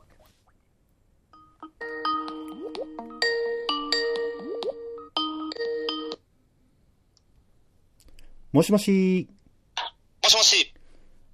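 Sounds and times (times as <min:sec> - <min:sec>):
Skype call ringtone chimes while a call connects: 0:01.4 - 0:06.2
speech: 0:08.5 - 0:09.4.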